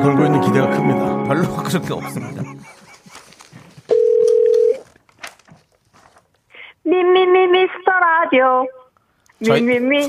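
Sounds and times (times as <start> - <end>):
speech: 0.0 - 2.8, 6.9 - 7.4, 8.0 - 8.8, 9.4 - 10.0
laughter: 1.4 - 3.8
loud steady telephone tone: 3.9 - 4.8.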